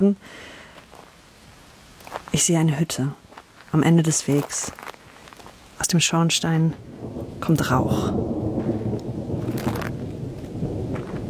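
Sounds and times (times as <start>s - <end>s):
speech: 0.0s - 0.5s, 2.3s - 4.9s, 5.8s - 8.4s
steady drizzle rain falling: 0.0s - 11.2s
low rumble: 6.8s - 11.2s.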